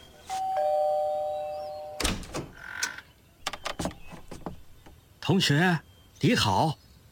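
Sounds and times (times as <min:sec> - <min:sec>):
electronic doorbell chiming: 0:00.3 - 0:02.1
speech: 0:05.3 - 0:06.8.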